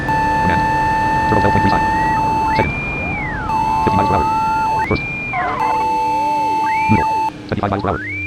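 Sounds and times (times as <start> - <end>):
electronic pedal tone from a car system: 0.1 - 2.7, 3.5 - 4.9, 5.6 - 7.3
speech: 1.4 - 2.0, 7.6 - 8.1.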